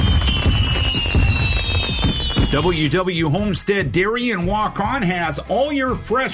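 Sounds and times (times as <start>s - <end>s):
thin high whistle of fireworks: 0.0s - 2.8s
low booming thuds of fireworks: 0.0s - 3.5s
fireworks crackling and popping: 0.0s - 3.6s
speech: 2.5s - 6.3s.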